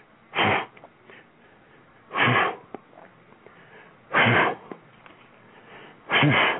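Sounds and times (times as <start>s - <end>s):
runners' heavy breathing: 0.4s - 2.7s, 3.4s - 4.7s, 5.4s - 6.5s.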